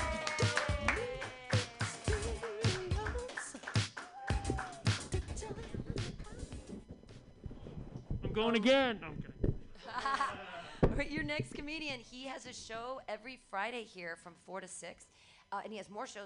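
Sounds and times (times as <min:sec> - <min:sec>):
people whooping and cheering: 0:00.0 - 0:02.8, 0:04.0 - 0:05.1
crowd clapping: 0:00.0 - 0:05.2
speech: 0:08.4 - 0:09.3, 0:11.0 - 0:16.2
laughter: 0:09.8 - 0:10.8.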